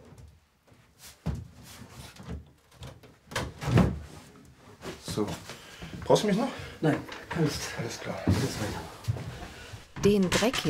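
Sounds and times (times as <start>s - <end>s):
wardrobe knocking and creaking while tilted forward and moved: 0.0s - 4.2s, 4.8s - 10.2s
speech: 5.2s - 9.0s, 10.0s - 10.6s.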